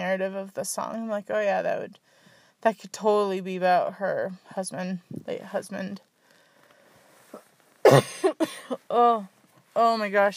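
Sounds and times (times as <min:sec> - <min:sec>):
speech: 0:00.1 - 0:06.1, 0:07.9 - 0:10.3
person coughing harshly: 0:07.8 - 0:08.9.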